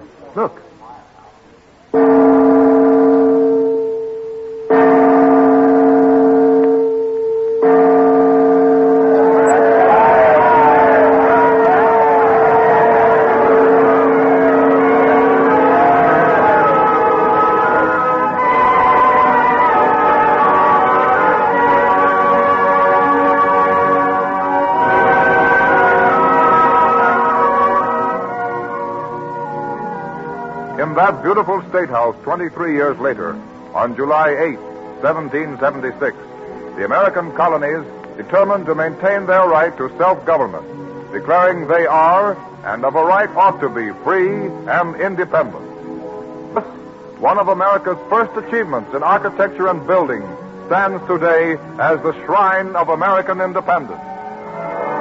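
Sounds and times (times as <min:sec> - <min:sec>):
speech: 0:00.4 - 0:00.8, 0:31.4 - 0:45.6, 0:47.4 - 0:54.0
large bell tolling in a belfry: 0:02.0 - 0:32.3
crowd cheering and shouting: 0:09.2 - 0:18.6.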